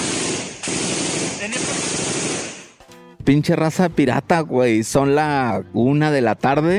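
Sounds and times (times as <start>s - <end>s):
heavy gunfire in rapid shots: 0.0s - 2.8s
speech: 3.2s - 6.7s.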